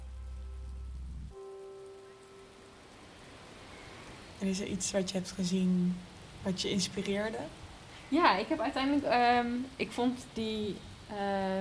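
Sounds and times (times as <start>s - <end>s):
low tonal hum: 0.0s - 4.0s
brief sustained tone: 0.0s - 4.3s
rain pattering softly in a garden: 0.0s - 11.5s
speech: 4.4s - 11.5s.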